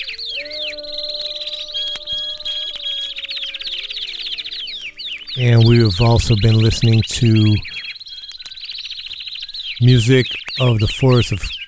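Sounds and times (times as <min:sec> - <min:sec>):
warbler flock singing in high chirps and trills: 0:00.0 - 0:11.6
speech: 0:05.4 - 0:07.8, 0:09.8 - 0:11.6.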